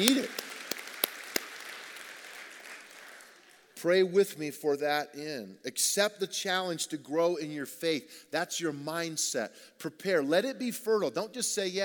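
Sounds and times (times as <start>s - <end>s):
speech: 0.0s - 0.4s, 3.8s - 11.8s
sharp handclaps: 0.0s - 3.6s
congregation clapping: 0.0s - 3.8s.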